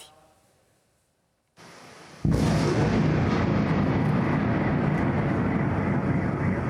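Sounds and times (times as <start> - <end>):
burst of explosions from missile strikes at night: 2.2 - 6.6.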